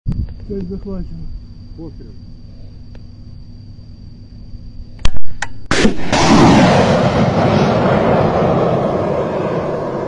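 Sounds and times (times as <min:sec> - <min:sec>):
speech: 0:00.5 - 0:02.3
anti-aircraft fire bangs in the war in Ukraine: 0:05.7 - 0:10.0
heavy sustained rumbling roar of anti-aircraft fire: 0:06.0 - 0:10.0.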